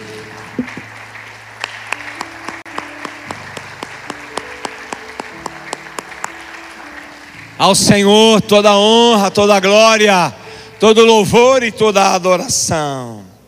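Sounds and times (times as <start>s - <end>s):
audience applauding in a large room: 0.0s - 9.6s
sustained keyboard chords: 0.0s - 12.7s
speech: 7.6s - 13.3s.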